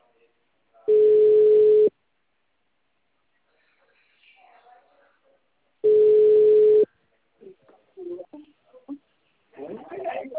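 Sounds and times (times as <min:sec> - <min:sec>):
mid-pitched telephone tone beeps while a call is placed: 0:00.9 - 0:01.9, 0:05.8 - 0:06.9
brief voice-like noises: 0:07.4 - 0:10.3.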